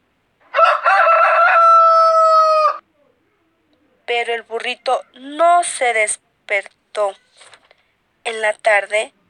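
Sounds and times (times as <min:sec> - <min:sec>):
rooster crowing loudly: 0:00.5 - 0:02.8
speech: 0:04.3 - 0:07.5, 0:08.2 - 0:09.2.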